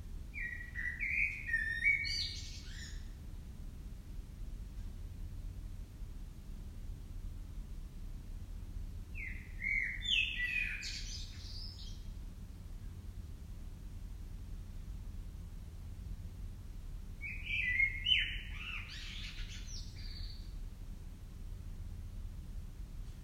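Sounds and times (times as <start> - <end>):
quiet low hum: 0.0 - 23.2
common blackbird Turdus merula singing: 0.4 - 3.2, 9.1 - 12.1, 17.2 - 20.6.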